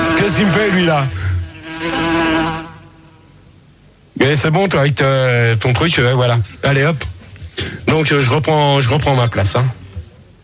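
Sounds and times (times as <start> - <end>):
housefly buzzing: 0.0 - 3.3
speech: 0.2 - 1.2, 4.2 - 9.8.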